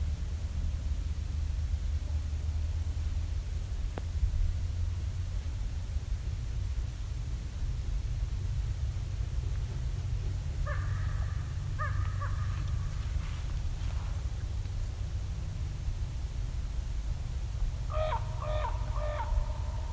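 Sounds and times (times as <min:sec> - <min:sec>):
low wind rumble: 0:00.0 - 0:19.9
raven cawing: 0:10.6 - 0:13.2, 0:17.9 - 0:19.9.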